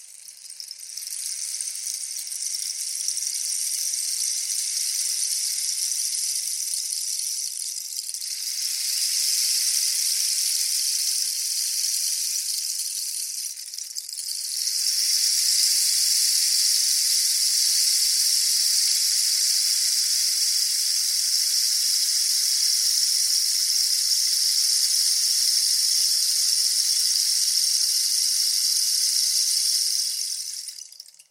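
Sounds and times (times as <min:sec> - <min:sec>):
South American rainstick of cactus stem pouring small pebbles or sand: 0:00.0 - 0:31.2.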